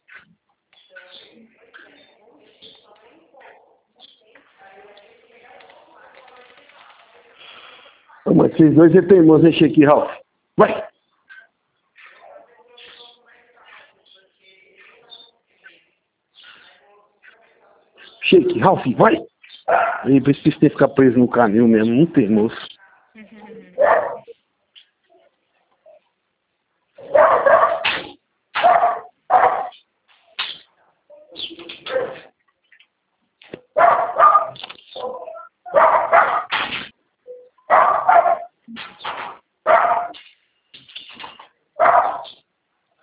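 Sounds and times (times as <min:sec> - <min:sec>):
speech: 0:08.4 - 0:10.8, 0:18.6 - 0:19.3, 0:20.0 - 0:22.7
several dogs barking: 0:18.6 - 0:21.0, 0:23.8 - 0:24.4, 0:27.0 - 0:29.8, 0:31.2 - 0:32.4, 0:33.7 - 0:36.6, 0:37.6 - 0:38.6, 0:39.3 - 0:40.2, 0:41.8 - 0:42.5.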